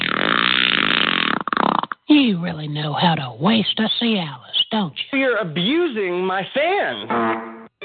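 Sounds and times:
long loud buzzing fart: 0.0 - 2.0, 7.1 - 7.7
speech: 2.1 - 7.5.

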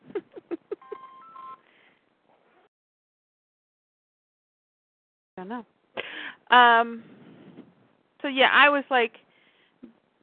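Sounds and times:
phone short electronic beeps: 0.8 - 1.6
speech: 5.4 - 7.2, 8.2 - 9.2.

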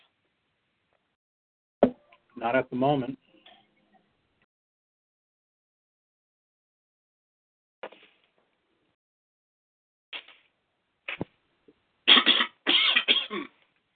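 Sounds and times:
speech: 2.4 - 3.2
coughing: 12.1 - 13.6.

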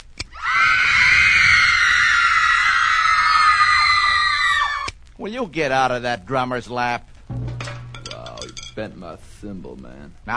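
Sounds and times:
many people screaming together: 0.3 - 4.9
speech: 5.3 - 7.4, 8.8 - 10.3.

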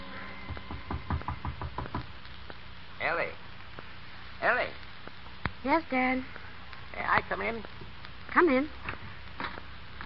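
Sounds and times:
firm knocking on a door: 0.4 - 2.2
speech: 3.0 - 3.4, 4.4 - 4.8, 5.6 - 6.4, 7.0 - 7.8, 8.4 - 8.9.

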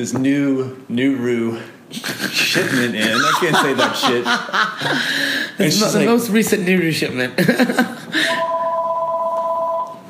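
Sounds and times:
speech: 0.0 - 8.3
laughter: 1.9 - 5.2, 7.4 - 8.2
telephone ringing with electronic two-note tone: 8.3 - 10.0.

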